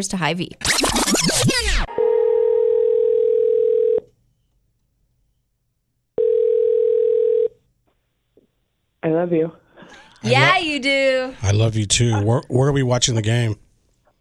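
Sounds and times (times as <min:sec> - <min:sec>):
speech: 0:00.0 - 0:01.5, 0:09.1 - 0:13.6
electronic telephone ringback tone: 0:01.9 - 0:04.1, 0:06.2 - 0:07.6.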